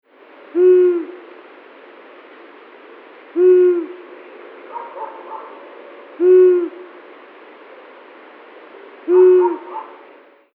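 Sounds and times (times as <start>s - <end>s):
Asio otus long-eared owl: 0.5s - 1.2s, 3.3s - 4.0s, 6.2s - 6.9s, 9.1s - 10.1s.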